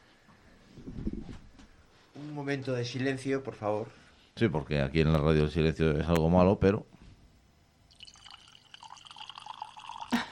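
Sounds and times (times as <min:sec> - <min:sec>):
speech: 0:02.3 - 0:06.9
thin stream of liquid trickling into a glass: 0:07.9 - 0:10.3.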